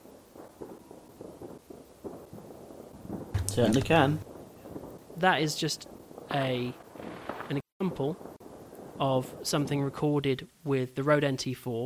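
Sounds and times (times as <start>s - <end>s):
fireworks popping and crackling: 0.0s - 5.2s
speech: 3.6s - 4.3s, 5.2s - 6.8s, 7.5s - 8.3s, 9.0s - 11.8s.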